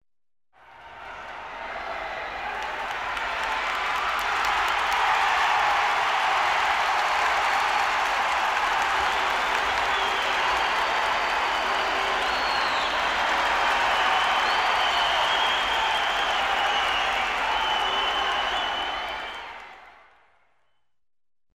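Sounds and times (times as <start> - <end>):
fans cheering in a stadium: 0.6 - 20.6.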